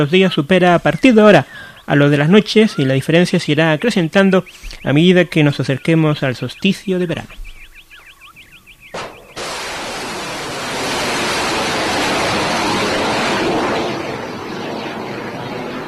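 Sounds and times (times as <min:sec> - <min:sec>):
speech: 0:00.0 - 0:07.4
Tomahawk cruise missile launch roar: 0:09.0 - 0:14.6.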